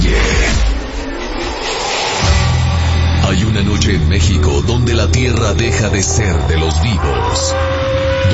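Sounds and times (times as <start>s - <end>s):
car engine starting and revving: 0.1s - 8.3s
speech: 3.9s - 8.3s.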